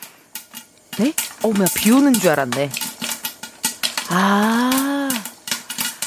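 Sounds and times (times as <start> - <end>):
popcorn popping in a machine: 0.0 - 6.0
speech: 1.0 - 2.8, 4.1 - 5.0
person's long drawn-out exclamation: 4.1 - 5.3.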